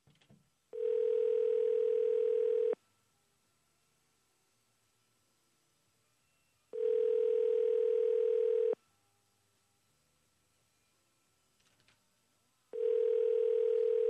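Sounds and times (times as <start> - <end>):
outgoing phone call ringback tones: 0.8 - 2.8, 6.7 - 8.8, 12.7 - 14.0.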